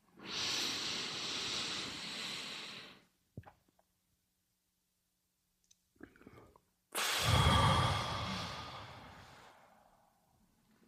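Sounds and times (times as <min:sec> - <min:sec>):
deep breath taken into the microphone: 0:00.2 - 0:03.1, 0:07.0 - 0:10.2.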